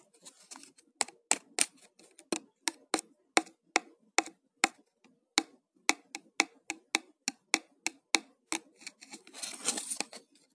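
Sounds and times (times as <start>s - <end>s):
brief rustling scrape: 0.0s - 0.9s, 8.8s - 10.5s
plastic clicks and taps: 1.0s - 9.0s.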